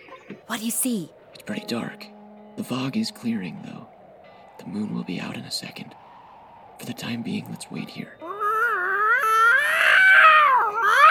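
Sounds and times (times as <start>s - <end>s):
speech: 0.5s - 3.9s, 4.6s - 6.0s, 6.8s - 8.2s
angry cat yowling: 8.2s - 11.0s.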